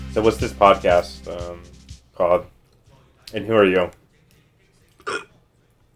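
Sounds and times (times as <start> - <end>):
speech: 0.2 - 2.5, 3.3 - 4.0
burp: 5.0 - 5.3.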